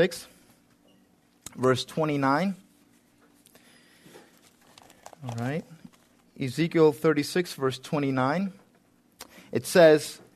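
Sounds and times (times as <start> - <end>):
speech: 0.0 - 0.3, 1.6 - 2.6, 5.2 - 5.8, 6.4 - 8.6, 9.5 - 10.2
pages of Bibles being turned: 4.2 - 6.4.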